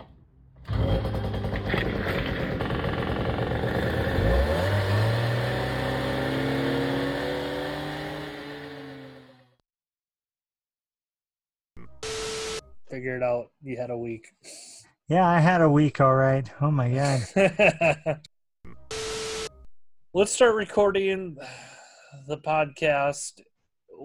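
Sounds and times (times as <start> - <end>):
small moped engine revving: 0.6 - 9.5
speech: 13.0 - 18.3, 20.2 - 24.0
laughter: 17.0 - 18.3.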